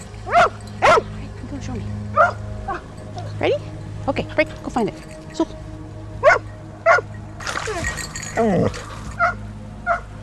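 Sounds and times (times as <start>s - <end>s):
dog barking at water: 0.3s - 1.1s, 2.2s - 2.8s, 6.2s - 7.0s, 9.2s - 10.0s
speech: 1.6s - 2.4s, 3.4s - 5.7s, 8.4s - 8.9s
water splashing and sloshing: 6.3s - 9.3s.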